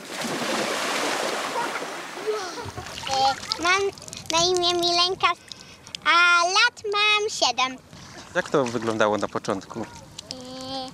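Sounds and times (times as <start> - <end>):
children running and splashing into shallow lake water: 0.0 - 4.8, 8.1 - 10.2
speech: 3.3 - 10.0.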